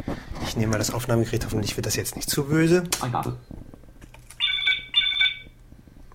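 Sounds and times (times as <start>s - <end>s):
speech: 0.0s - 3.6s
electronic phone ringtone trilling from a WAV file: 4.4s - 5.6s.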